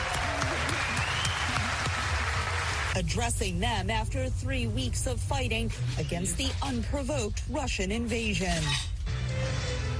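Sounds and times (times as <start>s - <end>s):
U.S. lawmakers applauding in Congress: 0.0s - 3.0s
speech: 3.0s - 8.9s.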